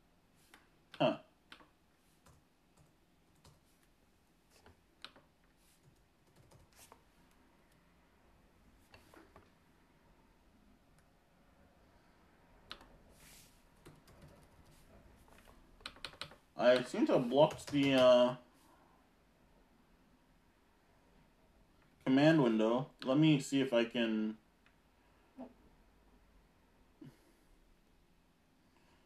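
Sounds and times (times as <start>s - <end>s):
typing on a computer keyboard: 1.5s - 3.6s, 5.0s - 7.0s, 12.7s - 13.0s, 13.8s - 18.1s
speech: 16.6s - 18.4s, 22.8s - 24.4s.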